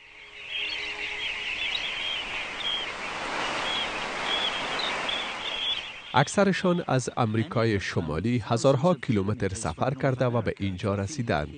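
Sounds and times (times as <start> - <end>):
many small birds chirping and tweeting at storm pools: 0.0 - 6.8
steady wash of water-like noise: 1.6 - 6.8
speech: 6.1 - 11.5.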